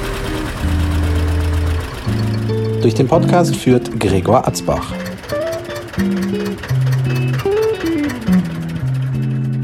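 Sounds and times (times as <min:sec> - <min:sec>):
tractor engine idling: 0:00.0 - 0:09.6
speech: 0:02.8 - 0:05.1, 0:06.0 - 0:07.5.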